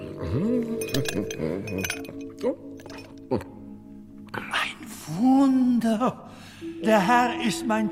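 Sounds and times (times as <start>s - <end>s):
speech: 0.2s - 2.7s, 3.3s - 3.5s, 5.1s - 7.9s
three small ice cubes clinking in a glass: 0.8s - 3.1s.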